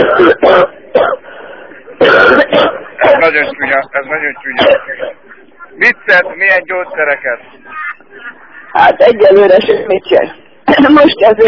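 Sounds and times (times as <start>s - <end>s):
harsh rough coughing over a phone line: 0.0s - 1.4s, 2.0s - 3.5s, 4.5s - 5.3s
speech: 3.3s - 5.2s, 5.8s - 7.8s, 8.7s - 11.4s.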